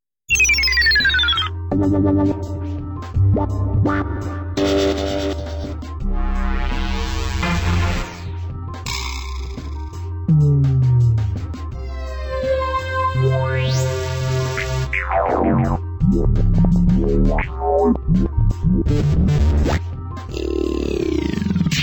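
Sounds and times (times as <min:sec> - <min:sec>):
synth samples: 0:00.3 - 0:21.8.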